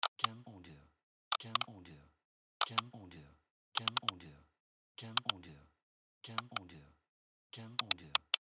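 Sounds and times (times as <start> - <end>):
computer mouse: 0.0 - 0.3, 1.3 - 1.7, 2.6 - 2.8, 3.8 - 4.1, 6.4 - 6.6, 7.8 - 8.4.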